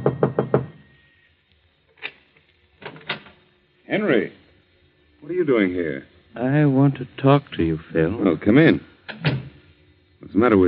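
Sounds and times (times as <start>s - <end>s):
knocking on a wooden apartment door on the top floor: 0.0s - 0.8s
speech: 3.9s - 4.4s, 5.3s - 9.3s, 10.3s - 10.6s.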